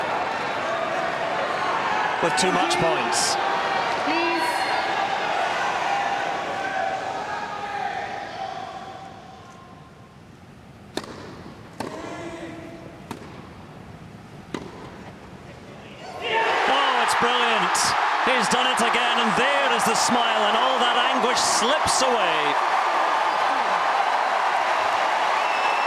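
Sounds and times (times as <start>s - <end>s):
large crowd cheering at a centre court tennis match: 0.0s - 9.3s, 16.0s - 25.8s
speech: 2.2s - 3.5s.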